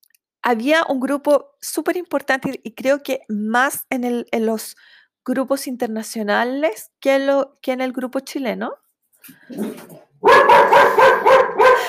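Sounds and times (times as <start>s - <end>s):
speech: 0.5s - 11.8s
dog barking outside a house: 9.6s - 11.8s.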